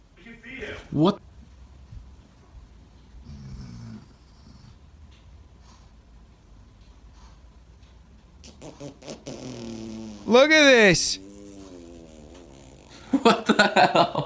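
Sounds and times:
speech: 0.9 - 1.3, 10.3 - 11.2, 13.2 - 14.2
short low buzzy fart: 8.4 - 13.3.

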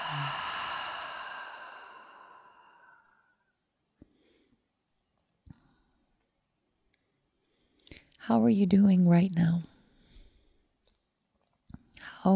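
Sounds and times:
long breathy exhale through the open mouth during a guided breathing exercise: 0.0 - 3.4
speech: 8.3 - 9.7.

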